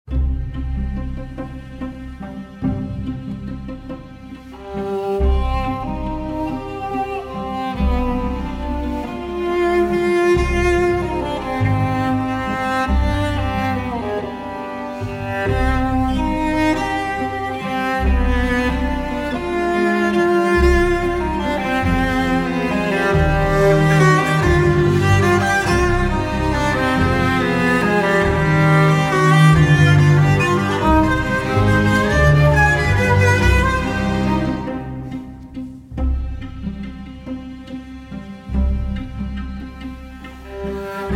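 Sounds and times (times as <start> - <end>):
strings: 0.0 - 41.1
viola solo: 1.9 - 41.1.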